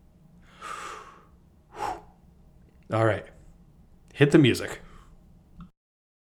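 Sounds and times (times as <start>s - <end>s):
deep breath: 0.4s - 2.2s
speech: 2.9s - 3.3s, 4.2s - 4.9s.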